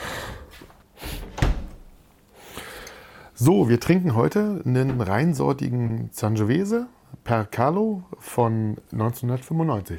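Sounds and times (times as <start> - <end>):
door pushed shut with a solid thud: 1.2 - 2.0
speech: 3.4 - 9.9.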